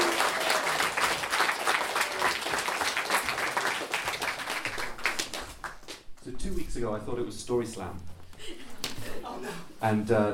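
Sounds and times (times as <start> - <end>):
audience applause welcoming performer to stage: 0.0 - 5.8
speech: 6.8 - 8.1, 9.4 - 10.3.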